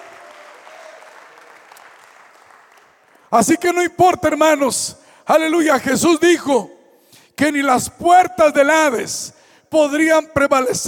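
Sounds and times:
applause from a church congregation: 0:00.0 - 0:03.4
speech: 0:03.3 - 0:06.8, 0:07.4 - 0:10.8.

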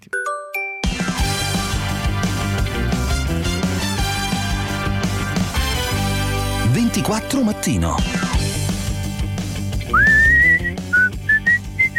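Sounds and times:
rhythmic musical backing: 0:00.8 - 0:11.9
speech: 0:07.0 - 0:08.2
whistled melody from a TV advert: 0:09.8 - 0:11.9.

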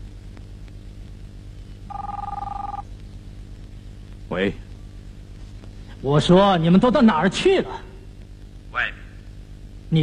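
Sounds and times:
low steady hum: 0:00.0 - 0:10.0
telephone ringing with a warbling two-tone electronic burst: 0:01.9 - 0:02.8
speech: 0:04.3 - 0:04.7, 0:06.0 - 0:07.9.

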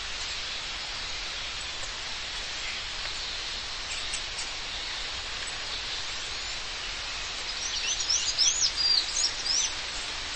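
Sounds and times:
background hiss: 0:00.0 - 0:10.3
bird singing high slurred whistles and chirps: 0:07.6 - 0:09.7.

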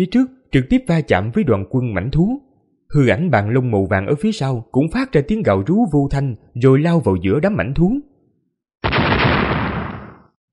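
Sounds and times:
speech: 0:00.0 - 0:08.1
powerful explosion sound effect: 0:08.8 - 0:10.3.

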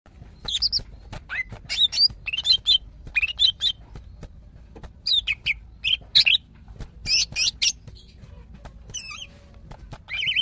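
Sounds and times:
greater green leafbird giving sharp chirps and whistled notes: 0:00.2 - 0:04.3, 0:05.0 - 0:08.2, 0:08.9 - 0:09.4, 0:10.1 - 0:10.4.

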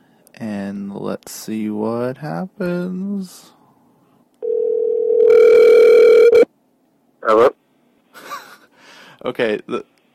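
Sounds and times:
speech: 0:00.4 - 0:03.6, 0:07.2 - 0:07.6, 0:09.2 - 0:09.9
telephone ringing tone as a call to a friend is placed: 0:04.4 - 0:06.5
laughter: 0:08.2 - 0:08.7.

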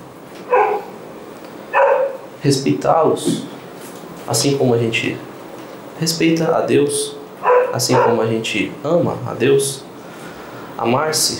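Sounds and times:
dog barking in short sharp yaps: 0:00.5 - 0:01.0, 0:01.7 - 0:02.3, 0:07.4 - 0:08.3
speech: 0:02.4 - 0:03.5, 0:04.3 - 0:05.3, 0:06.0 - 0:09.9, 0:10.8 - 0:11.3.

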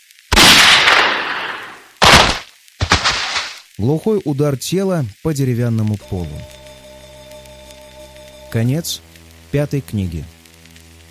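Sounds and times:
pistol gunshot: 0:00.3 - 0:03.5
speech: 0:03.8 - 0:06.6, 0:08.5 - 0:10.4.

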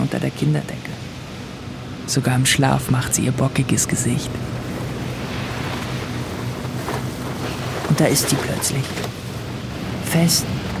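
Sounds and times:
ocean surf roaring as a wave rises: 0:00.0 - 0:10.7
speech: 0:00.1 - 0:00.9, 0:02.1 - 0:04.6, 0:08.0 - 0:09.2, 0:10.0 - 0:10.7
wind noise: 0:03.6 - 0:10.7.

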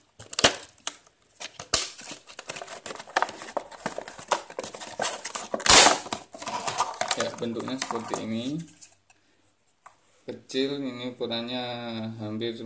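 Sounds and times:
plastic packaging of a rat repeller box crinkling as it is opened: 0:00.0 - 0:08.8
speech: 0:07.2 - 0:08.8, 0:10.3 - 0:12.6.

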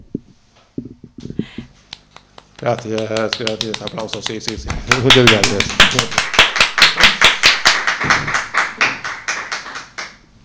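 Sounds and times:
audience applauding in rhythm: 0:01.4 - 0:10.2
speech: 0:02.6 - 0:06.3.

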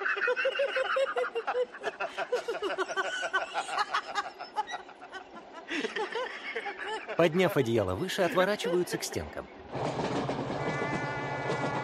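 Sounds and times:
laughter: 0:00.0 - 0:09.3
speech: 0:07.2 - 0:09.6
passenger train crossing a long bridge: 0:09.7 - 0:11.8.

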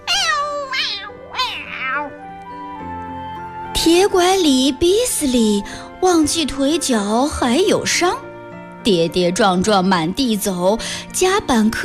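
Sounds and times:
cats meowing as they leap out of a box: 0:00.0 - 0:02.3
speech: 0:03.8 - 0:08.2, 0:08.8 - 0:11.8.

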